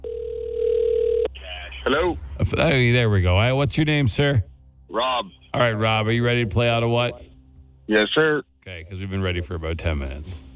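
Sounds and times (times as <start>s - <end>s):
ringback tone from an outgoing phone call: 0.0s - 1.3s
speech: 1.8s - 7.3s, 7.9s - 10.5s.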